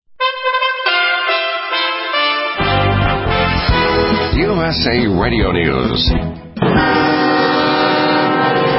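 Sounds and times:
special train horn sounding in a small Texas town: 0.2s - 4.2s, 6.6s - 8.7s
speech: 4.6s - 7.0s
rumble of moving train cars: 6.6s - 8.7s.

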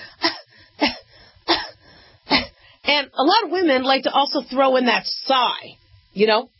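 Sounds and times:
quiet breathing: 0.0s - 2.9s
small restrained coughs: 0.1s - 2.6s
speech: 2.9s - 6.5s.

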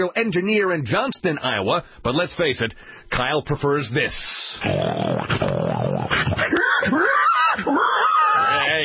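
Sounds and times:
speech: 0.0s - 8.8s
man imitating a pig grunting and squealing: 4.4s - 8.8s.

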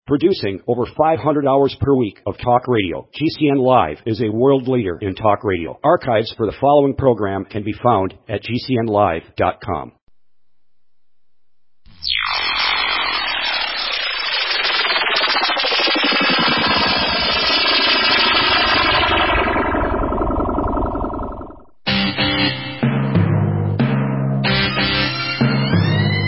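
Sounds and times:
speech: 0.1s - 10.0s
drone flying overhead: 11.9s - 21.8s
punchy rhythmic musical hits: 21.9s - 26.2s.

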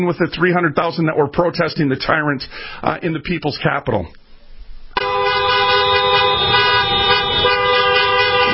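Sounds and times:
speech: 0.0s - 4.2s
car horns honking at a street protest in Michigan: 5.0s - 8.5s.

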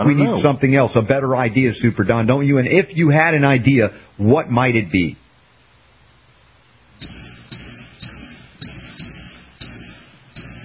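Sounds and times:
speech: 0.0s - 5.2s, 7.2s - 8.0s, 9.0s - 10.6s
crickets chirping: 7.0s - 10.6s.

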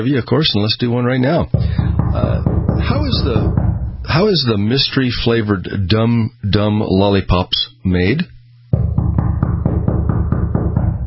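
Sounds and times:
speech: 0.0s - 8.3s
loud knocking on a studio door by trick-or-treaters: 1.6s - 4.3s, 8.8s - 11.0s.

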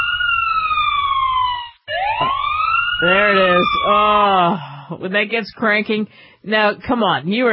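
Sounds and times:
loud police car siren wailing: 0.0s - 4.4s
speech: 3.0s - 7.5s.

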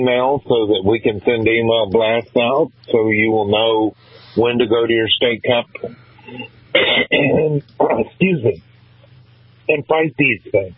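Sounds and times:
speech: 0.0s - 8.7s, 9.7s - 10.7s
man clearing his throat: 6.3s - 7.6s.

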